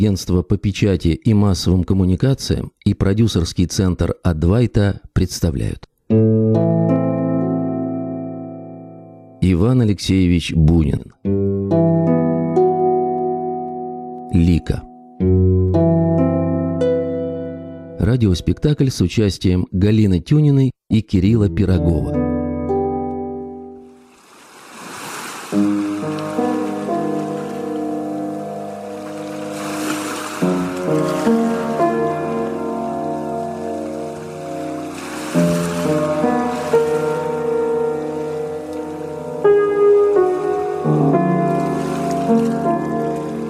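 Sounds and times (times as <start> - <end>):
speech: 0.0 - 6.9, 9.4 - 12.2, 14.3 - 16.0, 18.0 - 22.2
soft, sustained music with held chords: 6.1 - 9.4, 11.2 - 18.1, 21.6 - 24.2, 25.6 - 43.4
ocean waves washing in: 23.9 - 43.4.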